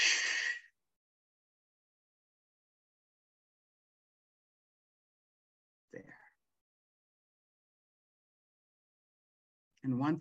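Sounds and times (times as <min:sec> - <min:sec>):
deep breath during a guided breathing exercise: 0:00.0 - 0:00.7
speech: 0:05.9 - 0:06.2, 0:09.8 - 0:10.1.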